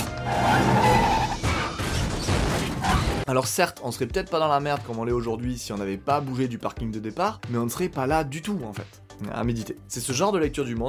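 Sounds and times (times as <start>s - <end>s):
car tires screeching in a handbrake turn: 0.0s - 3.2s
speech: 3.3s - 10.8s.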